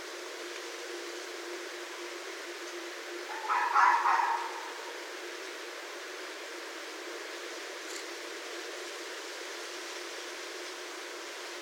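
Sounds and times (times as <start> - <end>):
background hiss: 0.0 - 11.5
red fox harsh wavering cry: 3.3 - 5.0.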